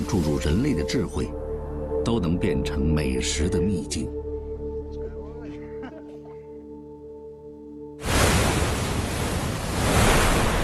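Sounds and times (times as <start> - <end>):
speech: 0.0 - 4.2
soft sustained music: 0.0 - 8.1
crashing sea waves at the Pearl River estuary as a typhoon approaches: 8.0 - 10.6
gusting wind at the Pearl River estuary as a typhoon approaches: 8.0 - 10.6.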